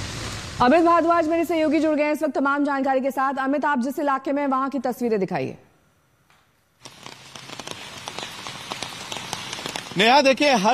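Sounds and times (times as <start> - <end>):
speech: 0.6 - 5.6, 10.0 - 10.7
steady rain pattering on the ground: 6.8 - 10.7.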